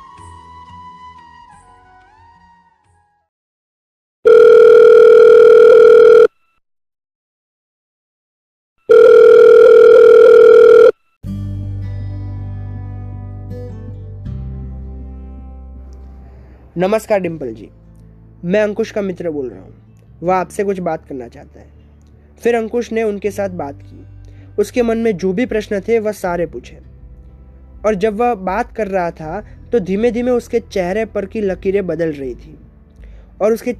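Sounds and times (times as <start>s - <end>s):
telephone ringback tone while calling a mobile phone: 4.3s - 6.5s, 8.9s - 11.0s
speech: 16.8s - 17.8s, 18.4s - 21.8s, 22.4s - 24.0s, 24.6s - 26.9s, 27.8s - 32.6s, 33.4s - 33.7s.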